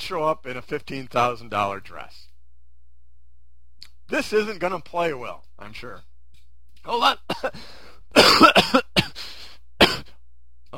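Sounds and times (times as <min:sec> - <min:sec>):
speech: 0:00.1 - 0:02.3, 0:04.1 - 0:06.1, 0:06.8 - 0:09.2
person coughing: 0:07.3 - 0:10.2.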